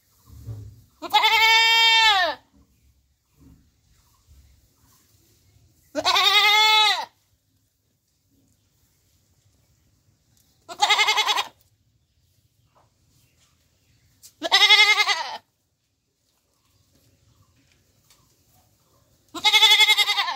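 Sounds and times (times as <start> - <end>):
goat bleating: 1.0 - 2.5, 5.9 - 7.2, 10.7 - 11.6, 14.4 - 15.5, 19.3 - 20.3.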